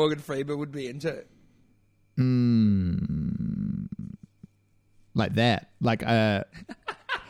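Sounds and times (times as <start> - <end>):
speech: 0.0 - 1.4, 2.2 - 3.2, 5.2 - 6.8
long loud rumbling fart: 2.2 - 4.2.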